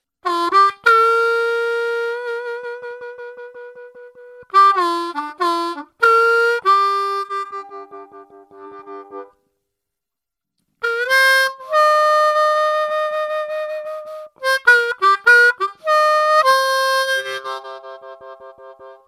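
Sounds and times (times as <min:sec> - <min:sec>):
harmonica: 0:00.2 - 0:09.4, 0:10.8 - 0:19.0.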